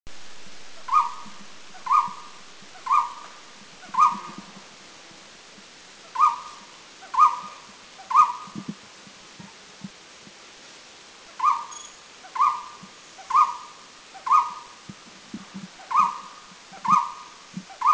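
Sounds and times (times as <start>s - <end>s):
Golden-throated Barbet calling at Doi Lang in Thailand: 0.8s - 4.6s, 6.1s - 8.7s, 11.4s - 14.8s, 15.8s - 17.9s.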